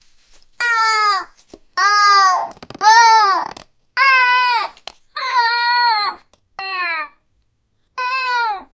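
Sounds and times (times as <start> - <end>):
happy child vocalizing: 0.6 - 7.2.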